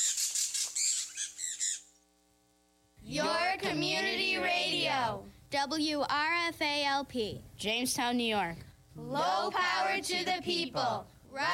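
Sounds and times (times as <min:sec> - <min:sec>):
wild bird squawking: 0:00.0 - 0:02.0
speech: 0:03.1 - 0:11.5.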